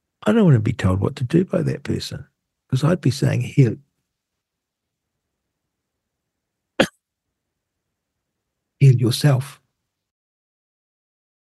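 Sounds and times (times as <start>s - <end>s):
speech: 0.2s - 3.8s, 9.0s - 9.6s
single short sharp cough: 6.8s - 7.0s.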